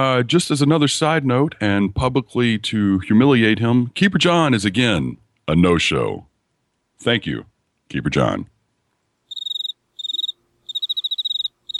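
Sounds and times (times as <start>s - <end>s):
speech: 0.0s - 6.3s, 7.0s - 8.5s
crickets chirping outside a bedroom at night: 9.3s - 11.7s.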